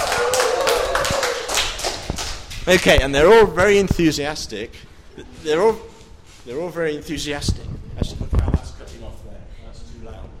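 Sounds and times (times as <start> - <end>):
group of people clapping hands: 0.0 - 3.0
speech: 2.7 - 8.2.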